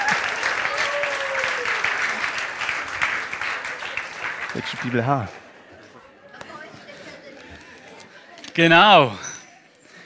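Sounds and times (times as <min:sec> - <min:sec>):
audience applause: 0:00.0 - 0:05.6
speech: 0:04.6 - 0:05.4, 0:08.6 - 0:09.3.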